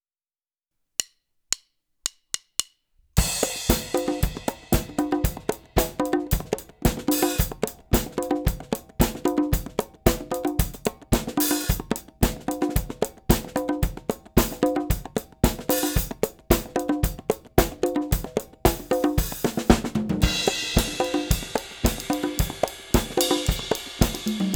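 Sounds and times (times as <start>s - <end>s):
disco percussion at 112 bpm: 3.2s - 24.5s.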